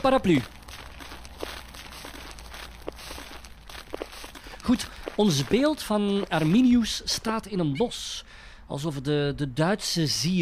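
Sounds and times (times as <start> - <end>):
speech: 0.0 - 0.6, 4.7 - 10.4
footsteps of a few people walking outdoors around a monument in a forest: 0.0 - 7.5.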